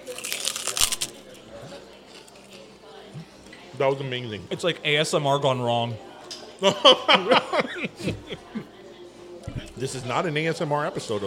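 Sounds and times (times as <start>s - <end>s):
extra crunchy chicharrones being bitten and chewed: 0.0s - 2.7s
speech: 3.8s - 8.6s, 9.8s - 11.2s
laughter: 6.6s - 8.8s.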